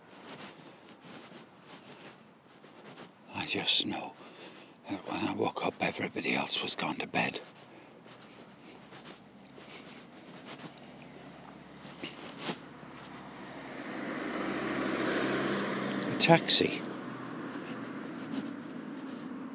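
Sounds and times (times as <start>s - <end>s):
taxi engine and tyre rumble coming into a housing estate: 0.0s - 19.5s
speech: 3.5s - 4.2s, 4.9s - 7.6s, 16.3s - 16.9s.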